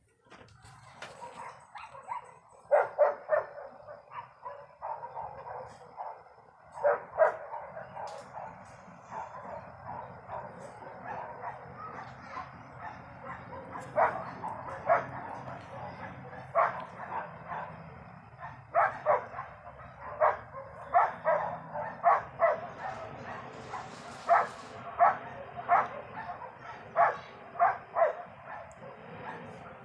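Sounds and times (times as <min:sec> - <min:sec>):
steady low hum: 0:00.0 - 0:29.8
several dogs barking in a neighborhood: 0:00.9 - 0:29.8.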